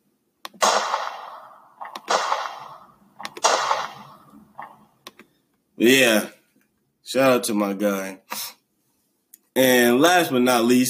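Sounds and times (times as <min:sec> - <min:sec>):
gunshot sound effects: 0:00.6 - 0:04.9
speech: 0:05.8 - 0:06.4, 0:07.1 - 0:08.4, 0:09.6 - 0:10.8.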